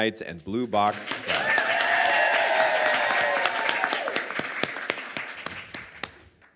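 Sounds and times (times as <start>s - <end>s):
speech: 0.0s - 1.7s
audience applause: 0.8s - 6.5s
crowd whooping and cheering: 1.1s - 4.9s.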